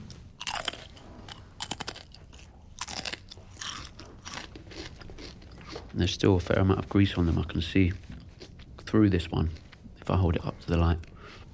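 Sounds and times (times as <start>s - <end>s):
expired greasy crisp snack being bitten and chewed: 0.1s - 10.2s
speech: 6.0s - 8.0s, 8.9s - 11.1s.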